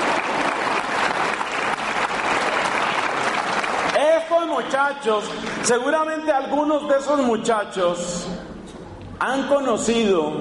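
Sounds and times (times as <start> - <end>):
group of young people applauding: 0.0 - 6.0
speech: 4.6 - 8.5, 9.2 - 10.3.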